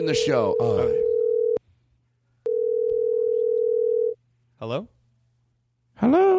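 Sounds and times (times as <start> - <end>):
speech: 0.0 - 1.0, 4.6 - 5.0, 6.0 - 6.3
phone line ringing through as a crank call is placed: 0.1 - 1.6, 2.5 - 4.2.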